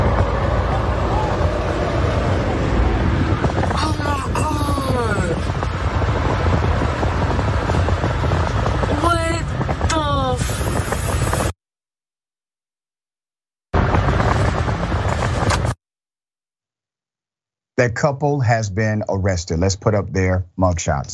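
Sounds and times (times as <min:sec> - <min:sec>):
car driving away: 0:00.0 - 0:08.9
engine and road noise: 0:00.0 - 0:11.6, 0:13.8 - 0:15.8
speech: 0:17.8 - 0:21.1.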